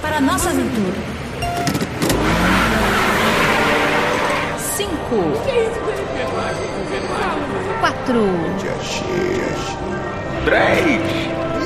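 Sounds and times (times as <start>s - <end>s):
car engine revving and accelerating: 0.1s - 7.5s
speech: 0.2s - 1.3s, 4.8s - 11.4s.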